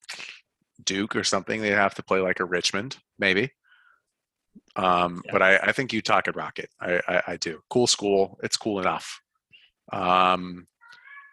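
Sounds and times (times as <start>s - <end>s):
speech: 0.8s - 3.6s, 4.8s - 9.2s, 9.9s - 10.7s
cat meowing: 10.8s - 11.3s.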